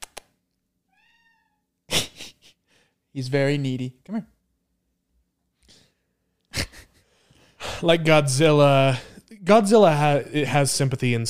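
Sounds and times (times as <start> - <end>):
sharp clicks: 0.0 - 0.3
domestic cat meowing: 0.9 - 1.7
speech: 3.1 - 4.4, 7.8 - 11.2.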